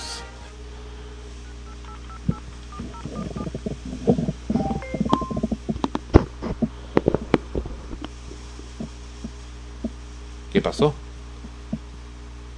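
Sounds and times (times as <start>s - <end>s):
steady low hum: 0.0s - 12.5s
telephone keypad tones placing a phone call: 1.5s - 3.6s, 4.5s - 5.6s
soft thumps and clicks: 2.3s - 8.2s
speech: 10.7s - 11.0s.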